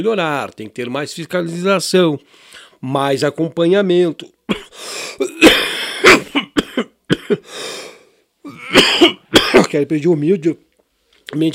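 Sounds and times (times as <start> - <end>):
speech: 0.0 - 5.6, 7.3 - 7.7, 9.7 - 10.7, 11.3 - 11.5
short raspy breaths: 2.3 - 2.8, 4.7 - 5.2, 7.4 - 8.3
person coughing in a coughing fit: 4.5 - 7.6, 8.5 - 9.8.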